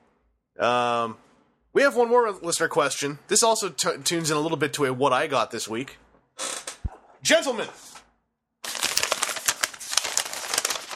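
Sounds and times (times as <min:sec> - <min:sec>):
speech: 0:00.6 - 0:01.2, 0:01.8 - 0:06.5, 0:07.2 - 0:07.9
paper roll crinkling as it is unwound: 0:08.7 - 0:10.9.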